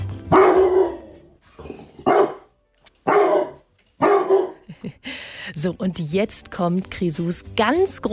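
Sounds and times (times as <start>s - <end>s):
dog barking a tune: 0.2s - 4.7s
speech: 5.6s - 8.1s.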